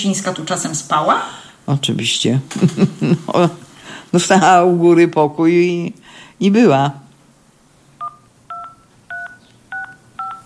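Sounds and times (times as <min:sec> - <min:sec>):
speech: 0:00.0 - 0:07.0
hiss: 0:00.0 - 0:10.4
telephone keypad tones as a phone number is dialed: 0:08.0 - 0:10.4.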